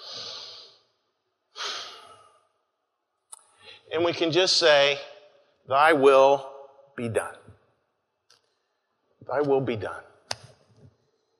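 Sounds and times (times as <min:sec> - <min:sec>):
person taking long airy deep breaths during a guided breathing pause: 0:00.0 - 0:00.8
speech: 0:03.9 - 0:05.1, 0:05.7 - 0:07.6, 0:09.2 - 0:10.1.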